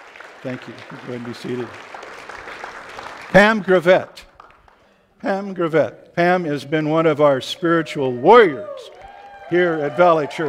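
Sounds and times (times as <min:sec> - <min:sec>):
crowd clapping: 0:00.0 - 0:04.9, 0:08.6 - 0:10.4
speech: 0:00.4 - 0:02.0, 0:03.3 - 0:04.2, 0:05.2 - 0:08.9, 0:09.5 - 0:10.4.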